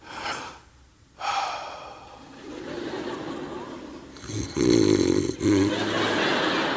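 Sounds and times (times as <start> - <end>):
laughter: 2.2 - 4.2, 5.4 - 6.7
person doing a vocal impression of a female dog snoring: 4.2 - 5.9.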